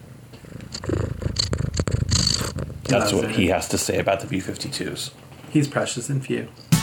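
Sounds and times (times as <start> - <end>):
contented cat purring on someone's lap: 0.3 - 4.0
speech: 2.9 - 6.7.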